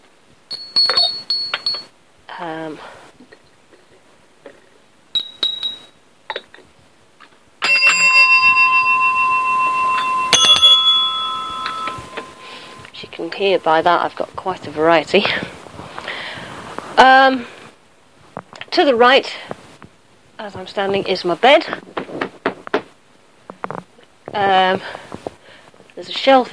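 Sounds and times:
small ornamental bells ringing: 0:00.5 - 0:01.9, 0:05.1 - 0:06.0, 0:07.6 - 0:14.0
speech: 0:02.4 - 0:03.0, 0:13.4 - 0:15.6, 0:17.0 - 0:17.6, 0:18.8 - 0:19.5, 0:20.4 - 0:21.9, 0:24.4 - 0:25.0, 0:26.0 - 0:26.5.

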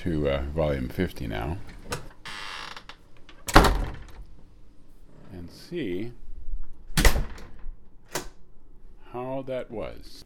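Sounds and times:
speech: 0:00.0 - 0:01.8, 0:05.5 - 0:06.2, 0:09.1 - 0:10.2
door creaking and scraping: 0:01.7 - 0:04.3, 0:06.9 - 0:08.4
door slamming shut: 0:03.4 - 0:04.2, 0:06.9 - 0:08.4.

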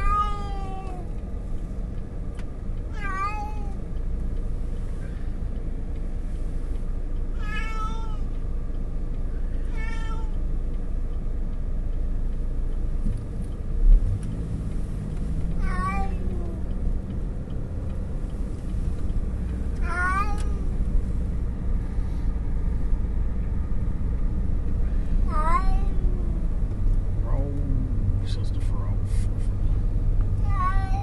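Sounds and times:
cat meowing and yowling: 0:00.0 - 0:01.1, 0:02.9 - 0:03.8, 0:07.4 - 0:08.3, 0:09.7 - 0:10.4, 0:15.6 - 0:16.6, 0:19.8 - 0:20.7, 0:25.3 - 0:26.2, 0:30.4 - 0:31.0
low steady rumble: 0:00.0 - 0:31.0.

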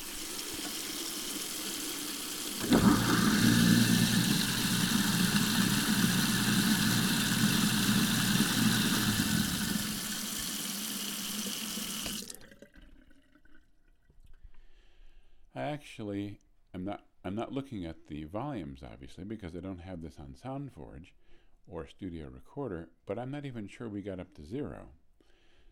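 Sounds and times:
rushing water in a kitchen sink: 0:00.0 - 0:12.4
garbage disposal grinding in a kitchen sink: 0:00.0 - 0:12.7
speech: 0:15.8 - 0:25.0.

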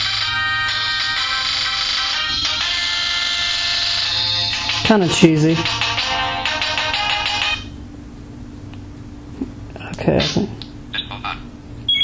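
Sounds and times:
phone ringtone with bright rapidly pulsing electronic melody: 0:00.0 - 0:07.7
speech: 0:04.9 - 0:05.8, 0:10.1 - 0:10.6.

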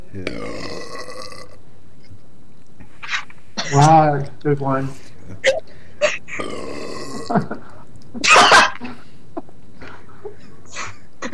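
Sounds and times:
speech: 0:00.1 - 0:00.6, 0:03.7 - 0:05.6, 0:07.3 - 0:08.4
loud throaty burp after drinking a can: 0:00.2 - 0:01.6, 0:05.4 - 0:07.6, 0:08.2 - 0:08.8.

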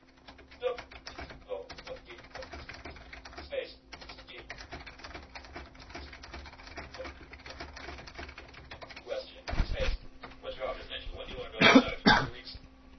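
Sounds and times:
typing on a computer keyboard: 0:00.0 - 0:09.6
faint constant hum: 0:00.0 - 0:12.9
person coughing or clearing throat: 0:11.6 - 0:12.4.

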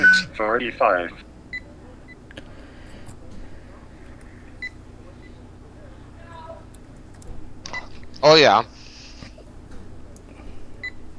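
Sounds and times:
Mac computer electronic alert beep: 0:00.0 - 0:00.4
low hum: 0:00.0 - 0:11.1
speech: 0:00.2 - 0:01.3, 0:08.2 - 0:08.8.

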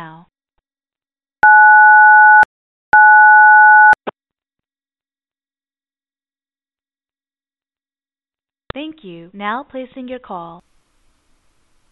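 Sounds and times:
telephone keypad tones from the pound key: 0:01.4 - 0:04.0
speech: 0:08.8 - 0:10.7.

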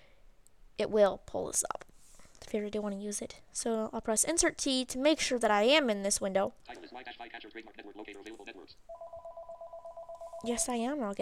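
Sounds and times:
speech: 0:00.8 - 0:01.9, 0:02.5 - 0:09.4, 0:10.4 - 0:11.2
telephone ringing with electronic two-tone warble: 0:08.9 - 0:10.9.

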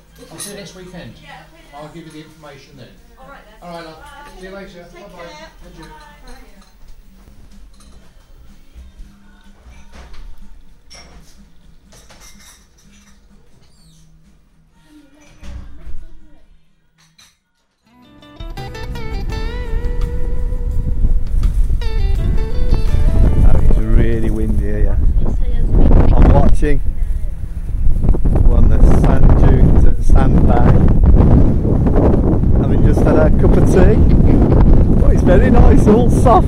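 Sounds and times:
speech: 0:00.2 - 0:06.7
gale wind buffeting the microphone on an open-sea beach: 0:19.6 - 0:36.4.

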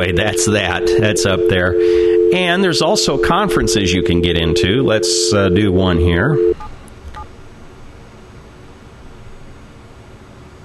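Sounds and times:
telephone keypad tones dialing a speed-dial number: 0:00.0 - 0:06.6
speech: 0:00.0 - 0:06.7.

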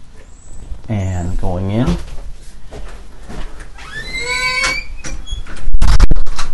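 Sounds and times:
speech: 0:00.9 - 0:02.1
metal front door hinge squealing: 0:03.8 - 0:05.7.

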